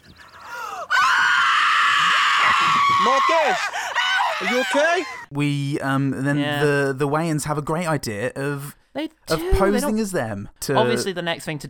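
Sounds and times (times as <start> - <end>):
women screaming: 0.4 - 5.3
speech: 3.0 - 3.8, 4.4 - 11.6.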